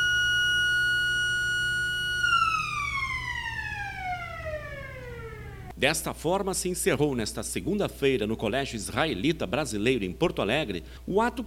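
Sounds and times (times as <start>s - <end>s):
loud siren wailing: 0.0s - 5.8s
speech: 5.8s - 11.4s.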